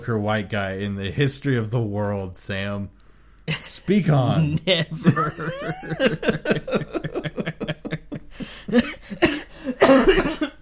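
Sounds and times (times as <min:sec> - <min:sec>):
speech: 0:00.0 - 0:07.2
laughter: 0:04.9 - 0:10.5
person coughing: 0:08.4 - 0:10.5.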